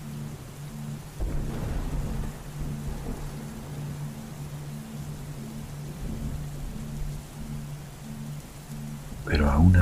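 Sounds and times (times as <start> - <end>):
faint low hum: 0.0 - 9.7
steady hissing rain: 0.0 - 9.7
deep thunder rumble: 1.1 - 8.2
speech: 9.3 - 9.7.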